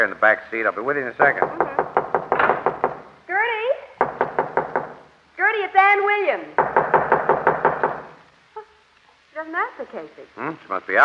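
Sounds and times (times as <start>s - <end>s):
speech: 0.0s - 1.8s, 5.6s - 6.7s, 9.4s - 11.0s
knocking on a wooden door: 1.2s - 3.1s, 4.0s - 5.1s, 6.6s - 8.2s.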